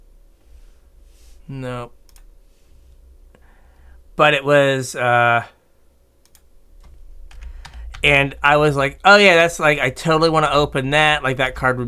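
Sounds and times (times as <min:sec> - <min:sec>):
faint low hum: 0:00.0 - 0:11.8
speech: 0:01.5 - 0:02.0, 0:04.2 - 0:05.6, 0:08.0 - 0:11.8
computer mouse clicking: 0:02.1 - 0:02.3, 0:06.2 - 0:08.0.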